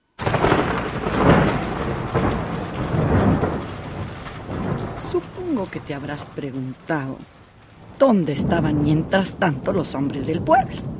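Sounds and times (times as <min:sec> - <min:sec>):
heavy rain: 0:00.2 - 0:10.9
low thunder rumbling: 0:00.2 - 0:10.9
speech: 0:05.6 - 0:07.4, 0:08.0 - 0:10.9.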